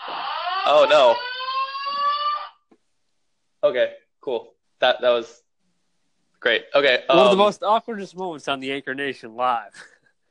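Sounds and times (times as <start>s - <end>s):
fire alarm blaring electronic tone: 0.0s - 2.6s
speech: 0.7s - 1.4s, 3.6s - 5.4s, 6.4s - 9.9s.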